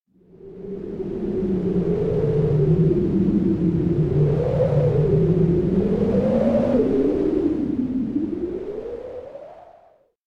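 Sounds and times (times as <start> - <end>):
electric wind low growl: 0.3 - 9.9.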